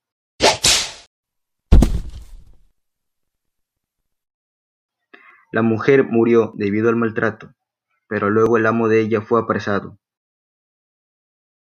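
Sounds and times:
whip whooshing through the air in a double swish: 0.4s - 1.1s
speech: 5.5s - 10.0s.

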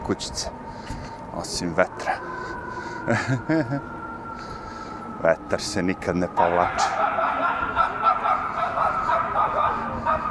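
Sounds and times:
noisy background: 0.0s - 10.2s
speech: 0.1s - 2.5s, 3.1s - 4.0s, 5.2s - 7.0s
laughter: 3.0s - 4.0s, 6.4s - 10.2s
dog barking: 6.7s - 10.2s.

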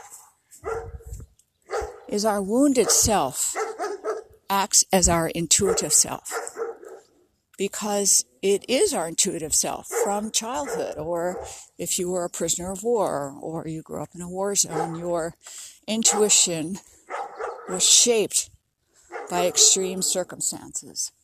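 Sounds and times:
dog barking and yipping: 0.0s - 2.1s, 2.7s - 4.3s, 5.6s - 7.1s, 9.8s - 11.6s, 14.6s - 15.1s, 17.1s - 17.9s, 19.1s - 20.2s
speech: 2.1s - 3.5s, 4.5s - 6.4s, 7.6s - 17.0s, 17.7s - 18.6s, 19.3s - 21.2s.

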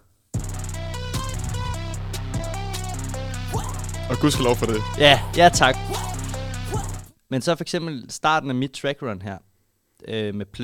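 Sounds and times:
loud rap beat with booming bass, distorted synth lines and punchy drums: 0.4s - 7.1s
speech: 4.1s - 6.1s, 7.3s - 10.6s.

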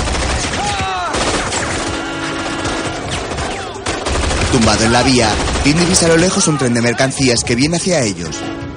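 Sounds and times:
rapid repeated gunfire in a shootout: 0.0s - 6.6s
speech: 4.5s - 8.6s.

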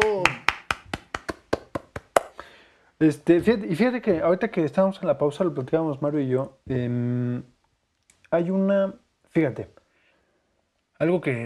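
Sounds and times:
one person applauding with hand claps: 0.0s - 2.5s
speech: 3.0s - 7.5s, 8.3s - 9.8s, 11.0s - 11.4s.

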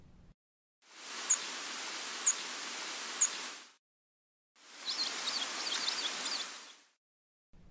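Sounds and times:
steady hiss: 0.9s - 3.8s, 4.6s - 6.9s
tree sparrow sharp high tip calls: 1.2s - 1.5s, 4.8s - 6.8s.

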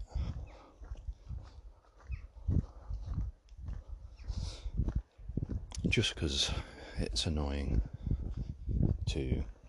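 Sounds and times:
footsteps crunching on gravel: 0.1s - 6.0s
speech: 5.9s - 8.0s, 9.1s - 9.5s.

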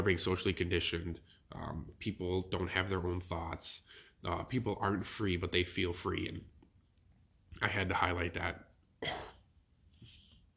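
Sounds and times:
speech: 0.0s - 6.5s, 7.6s - 9.3s
person coughing: 9.0s - 9.4s.

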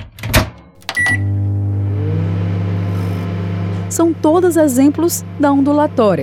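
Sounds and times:
microwave oven clicks and door sounds: 0.2s - 1.2s
microwave oven running with a low electrical hum: 0.8s - 6.2s
speech: 4.0s - 6.2s.

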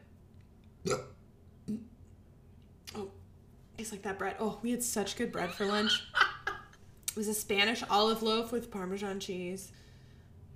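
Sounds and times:
person burping: 0.9s - 1.9s
speech: 4.0s - 6.2s, 7.2s - 9.8s.

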